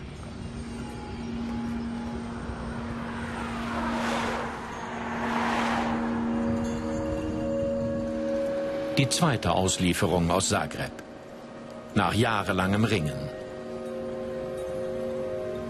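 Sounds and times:
small plane engine drone rolling in at Munich: 0.0s - 15.6s
speech: 9.0s - 11.0s, 11.9s - 13.4s.

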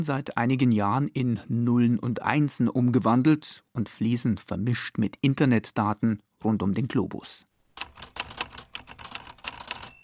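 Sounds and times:
speech: 0.0s - 8.2s
keystrokes on a 1950s manual typewriter: 7.8s - 10.0s.

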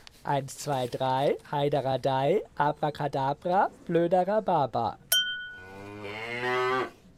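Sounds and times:
speech: 0.2s - 5.0s
cow mooing with a low sustained bellow: 5.5s - 7.0s.

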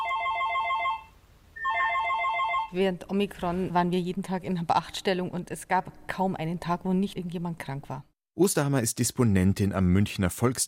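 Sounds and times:
telephone ringing with electronic trilling tones: 0.0s - 2.8s
speech: 2.7s - 10.6s.

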